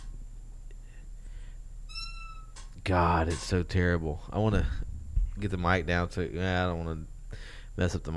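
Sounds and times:
low steady hum: 0:00.0 - 0:08.1
chair squeaking: 0:01.9 - 0:02.7
speech: 0:02.9 - 0:08.1.

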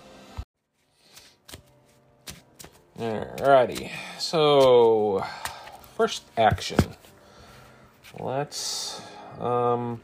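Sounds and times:
cards being shuffled back into a deck: 0:00.7 - 0:07.2
speech: 0:03.0 - 0:07.0, 0:08.2 - 0:10.0.

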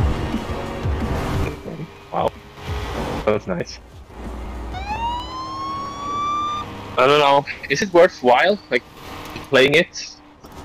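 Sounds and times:
low continuous engine rumble: 0:00.0 - 0:10.6
speech: 0:02.2 - 0:02.4, 0:03.3 - 0:04.0, 0:07.0 - 0:08.9, 0:09.5 - 0:10.2
police car siren in a racing video game: 0:04.5 - 0:07.0.

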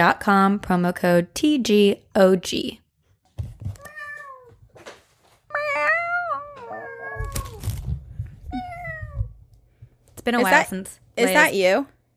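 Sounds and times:
speech: 0:00.0 - 0:02.8, 0:10.3 - 0:12.0
person imitating cat meows: 0:05.5 - 0:07.6, 0:08.5 - 0:09.3.

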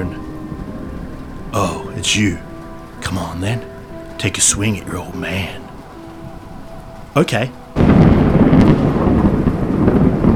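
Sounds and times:
steady rain: 0:00.0 - 0:10.3
thunder rumbling: 0:00.0 - 0:10.3
speech: 0:01.5 - 0:05.6, 0:07.2 - 0:07.6.

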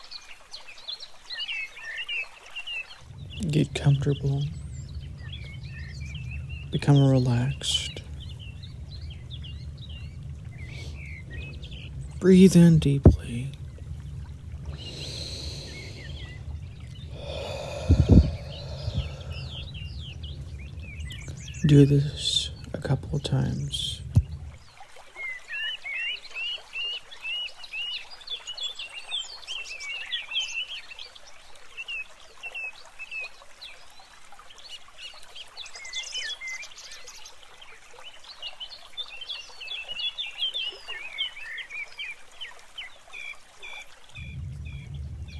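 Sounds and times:
steady trickling water-like hiss: 0:00.0 - 0:45.3
many birds chirping and singing outdoors: 0:03.1 - 0:24.7, 0:44.2 - 0:45.3
speech: 0:03.4 - 0:04.6, 0:06.7 - 0:08.0, 0:12.2 - 0:13.6, 0:21.7 - 0:22.4, 0:23.2 - 0:23.9.

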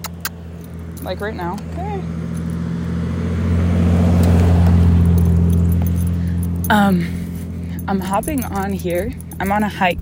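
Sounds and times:
metallic jingling: 0:00.0 - 0:03.2, 0:04.1 - 0:09.9
cars driving by: 0:00.0 - 0:09.9
speech: 0:01.0 - 0:02.2, 0:06.7 - 0:07.2, 0:07.9 - 0:09.9.

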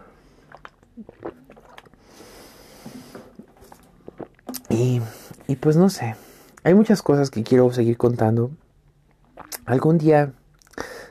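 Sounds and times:
person taking a last sip of water and swallowing: 0:00.2 - 0:05.6, 0:09.1 - 0:09.7
speech: 0:04.8 - 0:08.6, 0:09.7 - 0:10.4.

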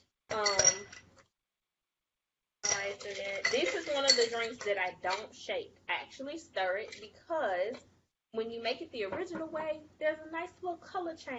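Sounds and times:
ice cubes clinking into a mixing glass for a cocktail: 0:02.6 - 0:04.6
speech: 0:03.0 - 0:11.3.

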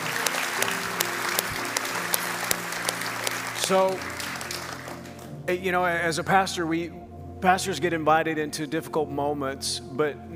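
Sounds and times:
audience applauding: 0:00.0 - 0:05.4
speech: 0:03.7 - 0:04.2, 0:05.5 - 0:10.3.

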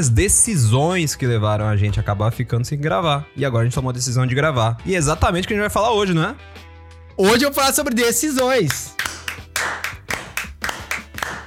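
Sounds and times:
speech: 0:00.0 - 0:09.0
person clapping hands: 0:08.2 - 0:11.4.

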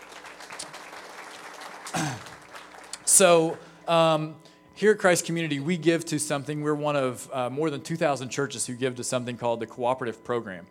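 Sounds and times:
crowd applauding a guest: 0:00.0 - 0:03.7
speech: 0:03.2 - 0:10.6.

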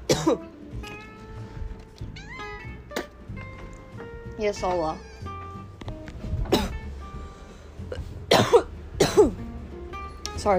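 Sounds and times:
harsh coughing fit: 0:00.1 - 0:00.5, 0:06.4 - 0:06.9, 0:07.9 - 0:09.4
speech: 0:00.2 - 0:00.9, 0:04.4 - 0:05.1.

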